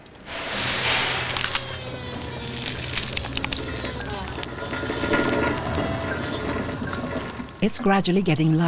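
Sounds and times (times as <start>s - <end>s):
burst of hissing air from a train: 0.0s - 7.7s
train starting up and rolling: 0.0s - 8.6s
speech: 7.6s - 8.6s.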